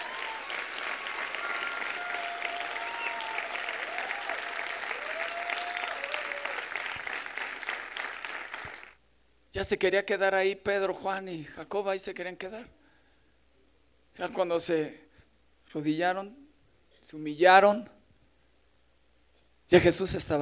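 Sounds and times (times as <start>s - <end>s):
large crowd applauding: 0.0s - 9.0s
speech: 9.5s - 12.8s, 14.2s - 15.0s, 15.7s - 16.4s, 17.0s - 18.0s, 19.7s - 20.4s.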